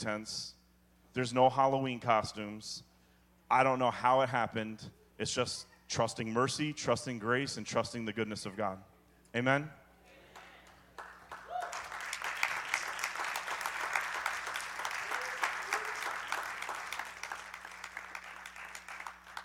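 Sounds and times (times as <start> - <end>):
speech: 0.0 - 0.6, 1.2 - 2.9, 3.5 - 9.8
room full of people applauding: 10.6 - 19.4.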